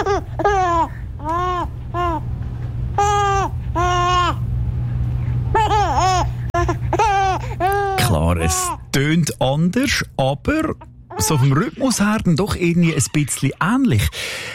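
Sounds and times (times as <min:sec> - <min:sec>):
baby laughing: 0:00.0 - 0:02.2, 0:03.0 - 0:04.4, 0:05.5 - 0:08.8, 0:11.1 - 0:14.3
steady low hum: 0:00.0 - 0:14.5
speech: 0:09.0 - 0:14.5.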